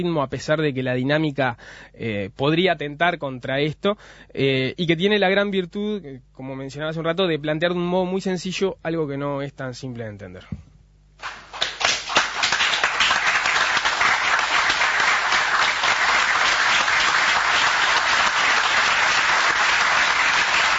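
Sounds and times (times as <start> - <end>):
speech: 0.0 - 11.4
crowd applauding: 11.2 - 20.7.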